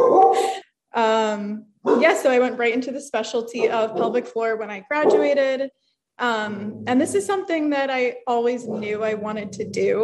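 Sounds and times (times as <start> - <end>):
dog barking: 0.0 - 0.4, 1.8 - 2.2, 3.6 - 4.2, 5.0 - 5.4
speech: 0.0 - 10.0.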